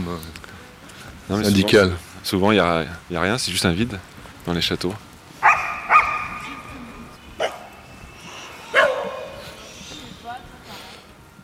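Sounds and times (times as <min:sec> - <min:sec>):
low murmur: 0:00.0 - 0:11.4
speech: 0:00.1 - 0:00.5, 0:01.3 - 0:05.1
dogs barking: 0:05.4 - 0:09.6.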